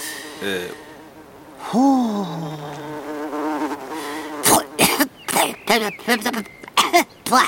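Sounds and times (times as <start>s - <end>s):
speech: 0.4s - 0.9s, 1.6s - 3.0s, 5.7s - 7.4s
person coughing and sputtering after inhaling something while forest bathing: 4.4s - 5.5s.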